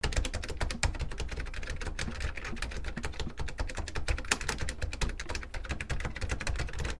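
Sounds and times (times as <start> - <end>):
high-speed keyboard typing: 0.0 - 6.9.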